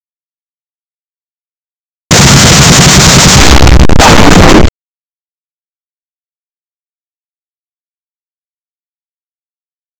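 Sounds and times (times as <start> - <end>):
close up recording of a machine gun: 2.1 - 4.7.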